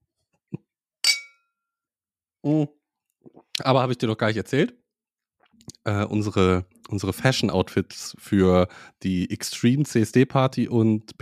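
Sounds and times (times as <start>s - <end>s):
glasses clinking in a toast: 1.0s - 1.6s
speech: 2.4s - 4.8s, 5.8s - 11.2s.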